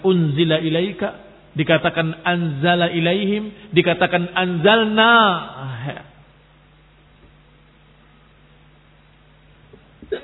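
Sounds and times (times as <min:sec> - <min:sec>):
speech: 0:00.0 - 0:06.1
quiet hum: 0:00.0 - 0:10.2
person sneezing: 0:10.0 - 0:10.2.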